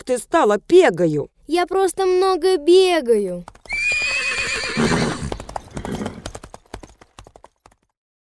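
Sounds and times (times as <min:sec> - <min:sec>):
speech: 0:00.1 - 0:03.6
horse hooves clip-clopping: 0:03.2 - 0:08.0
horse whinnying: 0:03.6 - 0:06.4.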